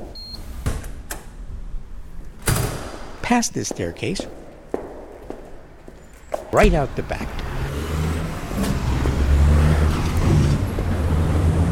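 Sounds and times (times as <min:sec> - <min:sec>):
speech: 0:03.3 - 0:04.4, 0:06.5 - 0:07.5
road traffic roar on a four-lane road: 0:05.8 - 0:11.6
cars revving as they pass: 0:06.6 - 0:11.6.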